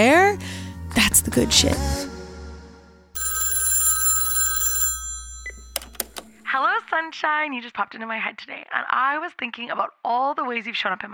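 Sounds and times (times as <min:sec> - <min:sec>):
speech: 0:00.0 - 0:02.1, 0:07.4 - 0:11.1
telephone ringing in a bright electronic burst: 0:03.2 - 0:06.6.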